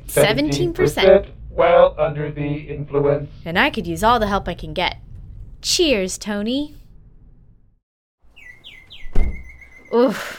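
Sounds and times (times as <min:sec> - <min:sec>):
speech: 0:00.2 - 0:06.8, 0:09.9 - 0:10.3
song thrush song piped through a facility's soundscape system: 0:08.3 - 0:10.0.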